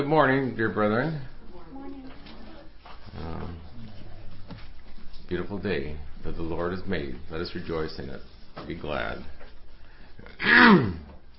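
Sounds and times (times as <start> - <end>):
speech: 0.0 - 1.9, 5.3 - 9.4, 10.2 - 11.1
preacher giving a rough voiced throat-clearing cough: 10.4 - 11.1.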